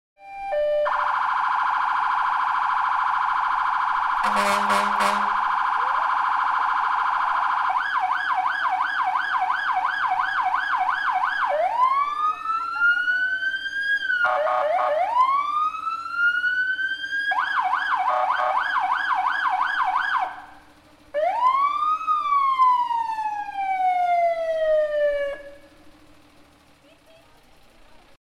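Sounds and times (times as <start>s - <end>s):
fire truck siren in Pichidegua: 0.2s - 26.0s.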